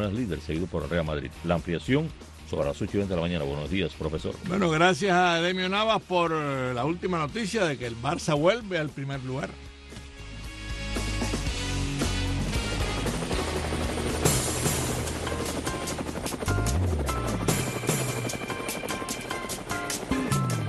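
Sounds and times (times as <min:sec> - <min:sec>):
speech: 0:00.0 - 0:09.7
helicopter rotor chopping with constant engine whine: 0:11.2 - 0:20.6.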